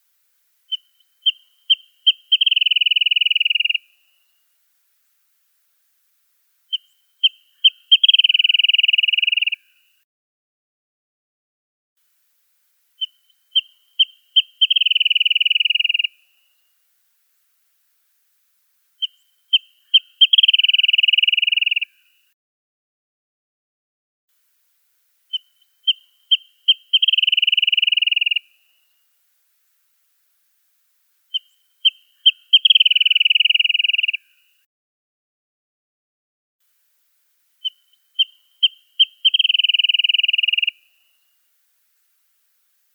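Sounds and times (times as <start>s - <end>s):
wrentit chirping: 0.6s - 4.4s, 6.6s - 9.9s, 13.0s - 16.7s, 19.0s - 22.2s, 25.3s - 29.0s, 31.3s - 34.6s, 37.6s - 41.4s.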